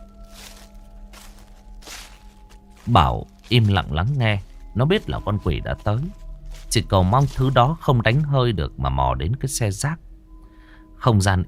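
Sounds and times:
footsteps crunching over gravel and dry leaves outside: 0:00.0 - 0:08.9
speech: 0:02.8 - 0:06.2, 0:06.8 - 0:10.1, 0:11.0 - 0:11.4.

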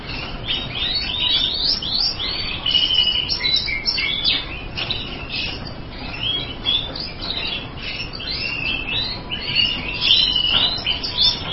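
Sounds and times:
bird song with chirping, twittering and sliding whistles: 0:00.0 - 0:11.5.

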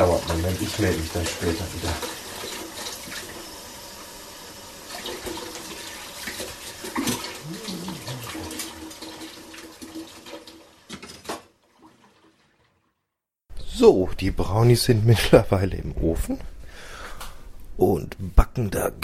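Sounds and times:
running water while washing up dishes in a kitchen: 0:00.0 - 0:10.9
speech: 0:00.2 - 0:02.2, 0:13.8 - 0:16.6, 0:17.8 - 0:19.0.

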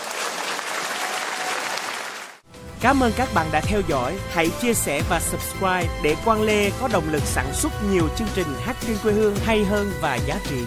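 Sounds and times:
audience applause at a live concert: 0:00.0 - 0:02.4
speech: 0:02.8 - 0:10.6.

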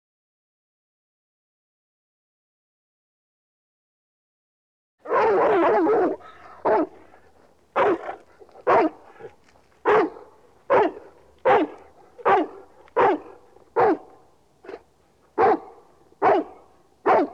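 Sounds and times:
dog barking: 0:05.0 - 0:17.3
speech: 0:05.3 - 0:06.9.

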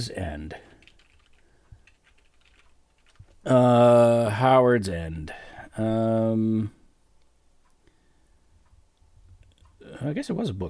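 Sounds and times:
speech: 0:00.0 - 0:00.6, 0:03.4 - 0:06.8, 0:09.9 - 0:10.6
typing on a computer keyboard: 0:00.7 - 0:03.4.

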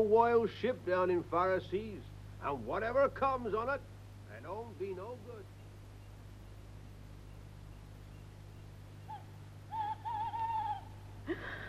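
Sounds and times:
speech: 0:00.0 - 0:05.6
steady low hum: 0:00.0 - 0:11.6
owl hooting: 0:05.4 - 0:11.2.

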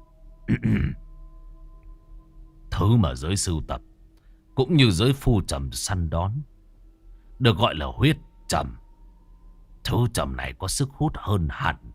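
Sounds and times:
speech: 0:00.5 - 0:01.0, 0:02.8 - 0:03.9, 0:04.6 - 0:06.5, 0:07.4 - 0:08.8, 0:09.8 - 0:11.9
young male clearing his throat: 0:00.5 - 0:01.0.

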